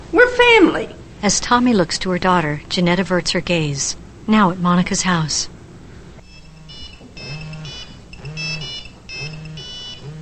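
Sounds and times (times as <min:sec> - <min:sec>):
speech: 0:00.4 - 0:05.6
cell phone ringing with an electronic ringtone: 0:06.2 - 0:10.2.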